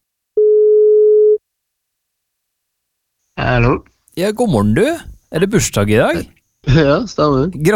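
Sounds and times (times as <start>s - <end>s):
telephone ringback tone electronic beep: 0.4s - 1.4s
speech: 3.4s - 7.7s.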